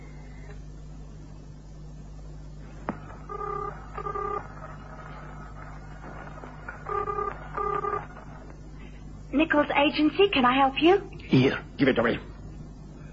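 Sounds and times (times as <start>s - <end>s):
low steady hum: 0.0s - 13.1s
telephone keypad tones as a number is dialed: 3.3s - 4.5s, 6.9s - 8.1s
speech: 9.5s - 12.3s.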